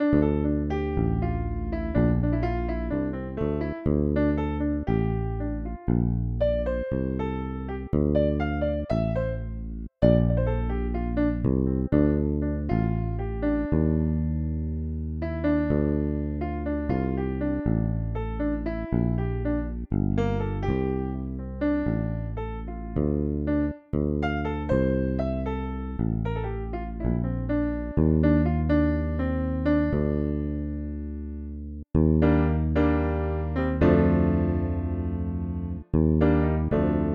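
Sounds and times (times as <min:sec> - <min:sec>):
piano bass: 0:00.0 - 0:37.1.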